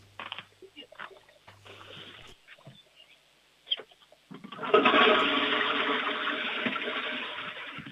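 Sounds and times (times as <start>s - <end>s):
toilet flushing: 4.4s - 7.8s.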